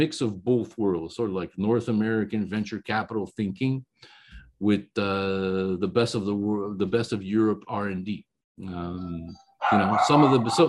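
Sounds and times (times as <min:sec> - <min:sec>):
speech: 0:00.0 - 0:10.6
dog barking loudly at doorbell: 0:09.6 - 0:10.6.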